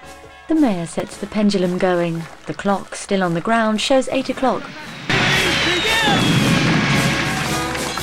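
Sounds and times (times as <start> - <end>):
speech: 0.5 - 4.9
fireworks bursting from the shell of a courthouse during a clock ceremony: 4.6 - 8.0.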